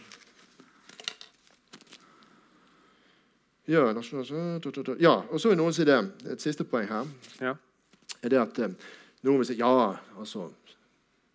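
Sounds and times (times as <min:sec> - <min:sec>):
paper rustling as a sheet is handled: 0:00.0 - 0:02.2, 0:07.0 - 0:08.1
speech: 0:03.7 - 0:10.8.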